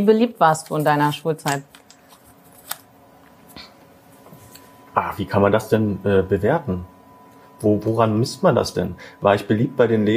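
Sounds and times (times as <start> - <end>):
speech: 0.0 - 1.8, 5.0 - 6.9, 7.6 - 10.1
page turning: 1.8 - 2.8.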